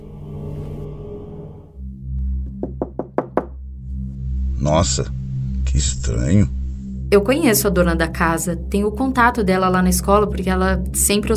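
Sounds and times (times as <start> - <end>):
knocking on a door: 2.5 - 3.6
low rumble: 3.6 - 11.3
speech: 4.6 - 11.3.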